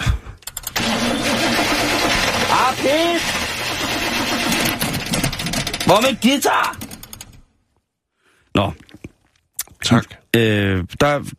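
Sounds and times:
car engine cranking but failing to start: 0:00.4 - 0:07.6
speech: 0:02.6 - 0:03.4, 0:05.9 - 0:06.8, 0:08.6 - 0:08.8, 0:09.8 - 0:11.3
man cursing: 0:05.9 - 0:06.8.

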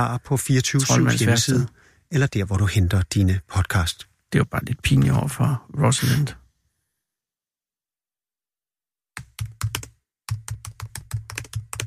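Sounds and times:
speech: 0:00.0 - 0:06.4
man typing angrily on a computer keyboard: 0:09.2 - 0:11.8.

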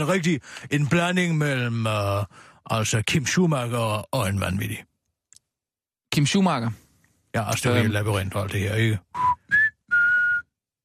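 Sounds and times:
speech: 0:00.0 - 0:04.9, 0:06.2 - 0:06.8, 0:07.4 - 0:09.4
person whistling clear notes: 0:09.1 - 0:10.7.

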